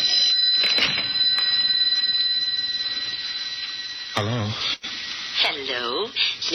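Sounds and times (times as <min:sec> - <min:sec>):
old-fashioned telephone bell ringing: 0:00.0 - 0:04.8
speech: 0:05.7 - 0:06.5.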